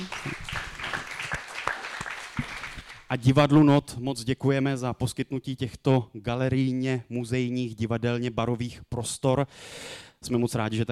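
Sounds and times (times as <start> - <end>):
theatre audience applauding: 0.0 - 3.1
speech: 3.1 - 10.8.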